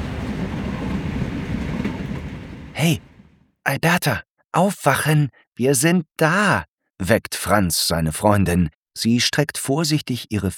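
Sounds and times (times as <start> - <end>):
train rolling along its rails with rattling clatter: 0.0 - 3.4
speech: 2.8 - 3.1, 3.7 - 10.5.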